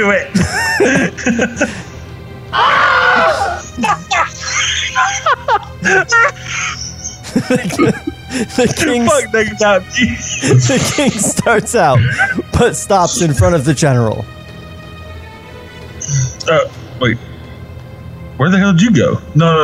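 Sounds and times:
speech: 0:00.0 - 0:01.9, 0:05.8 - 0:14.4, 0:16.1 - 0:17.3, 0:18.4 - 0:19.6
laughter: 0:00.2 - 0:02.0, 0:03.1 - 0:14.2
two young boys yelling and screaming down a hallway: 0:02.5 - 0:09.4.

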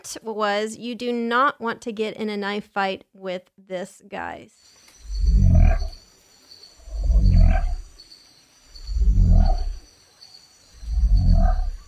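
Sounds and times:
speech: 0:00.0 - 0:04.8
insects humming: 0:04.5 - 0:11.8
frog that pushes bones through skin croaking: 0:05.0 - 0:06.1, 0:06.8 - 0:08.0, 0:08.7 - 0:09.9, 0:10.6 - 0:11.8.

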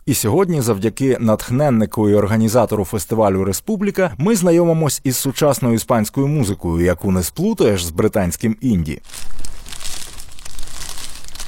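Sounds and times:
speech: 0:00.1 - 0:09.5
cut paper slips rustling and crinkling as they are stirred and drawn: 0:09.0 - 0:11.4.

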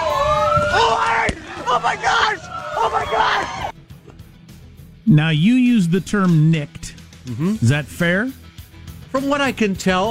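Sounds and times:
agitated protest crowd shouting in the street at night: 0:00.0 - 0:03.7
speech: 0:00.7 - 0:03.7, 0:05.1 - 0:08.4, 0:09.1 - 0:10.1.

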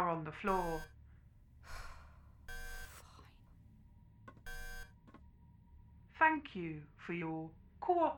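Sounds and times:
speech: 0:00.2 - 0:01.0, 0:06.2 - 0:08.1
alarm buzzing in harsh bursts: 0:00.5 - 0:00.9, 0:02.5 - 0:03.0, 0:04.5 - 0:05.0
breathy gasp: 0:01.6 - 0:02.4.

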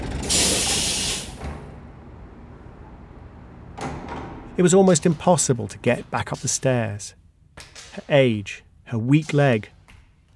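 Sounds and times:
bus air brakes hissing: 0:00.0 - 0:01.5
speech: 0:04.6 - 0:09.8.

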